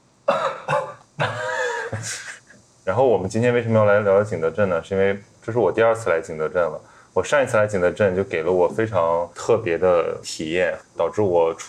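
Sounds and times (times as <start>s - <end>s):
person coughing in a harsh throaty fit: 0.3s - 2.5s
speech: 2.9s - 11.6s.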